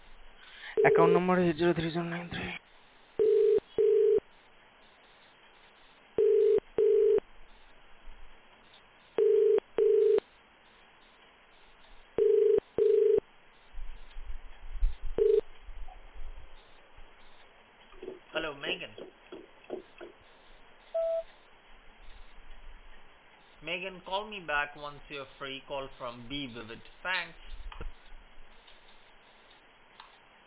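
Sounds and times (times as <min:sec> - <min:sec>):
telephone ringing tone in paired bursts as a call is placed: 0:00.8 - 0:01.2, 0:03.2 - 0:04.2, 0:06.2 - 0:07.2, 0:09.2 - 0:10.2, 0:12.2 - 0:13.2, 0:15.2 - 0:15.4, 0:21.0 - 0:21.2
speech: 0:00.8 - 0:02.6, 0:24.1 - 0:27.5.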